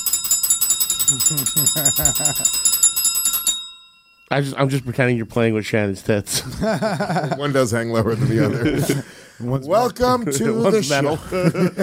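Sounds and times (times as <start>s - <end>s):
small bell ringing in a rapid trill: 0.0s - 5.3s
laughter: 1.1s - 2.6s, 6.3s - 9.2s, 10.2s - 11.8s
speech: 1.1s - 2.8s, 4.3s - 11.8s.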